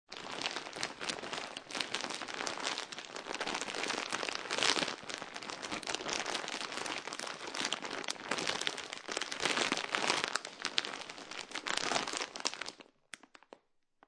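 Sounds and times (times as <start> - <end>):
plastic bag being crumbled: 0.1 - 13.6.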